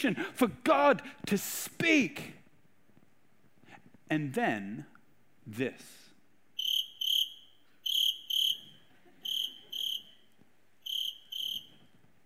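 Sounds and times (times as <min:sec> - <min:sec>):
speech: 0:00.0 - 0:02.4, 0:04.1 - 0:04.9, 0:05.5 - 0:06.0
crickets chirping in shrill double chirps: 0:06.6 - 0:10.2, 0:10.8 - 0:11.8.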